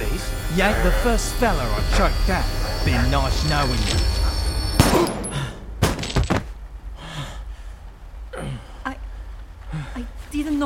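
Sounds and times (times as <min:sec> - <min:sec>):
speech: 0:00.5 - 0:04.2, 0:10.4 - 0:10.6
gunshots during a violent struggle: 0:04.8 - 0:06.2.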